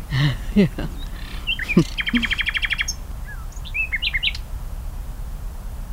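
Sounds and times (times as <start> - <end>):
laughter: 0.0 - 2.5
nightingale singing outdoors: 0.0 - 4.6
steady low outdoor hum: 0.0 - 5.9
speech: 0.2 - 1.0, 1.8 - 2.6.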